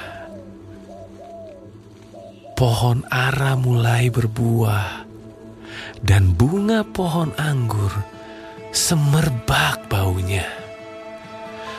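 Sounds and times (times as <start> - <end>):
turtle dove cooing: 0.0 - 4.2
speech: 2.6 - 5.0, 6.0 - 10.6.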